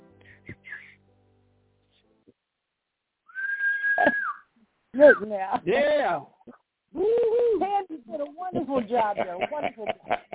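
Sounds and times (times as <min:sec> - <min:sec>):
person whistling a loud sustained high-pitched whistle: 0:00.3 - 0:01.0, 0:03.3 - 0:05.2
speech: 0:05.0 - 0:07.4, 0:08.1 - 0:10.3
laughter: 0:08.6 - 0:10.3.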